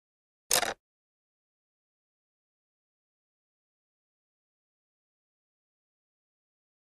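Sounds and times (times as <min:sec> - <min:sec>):
pencil dropping: 0:00.5 - 0:00.8.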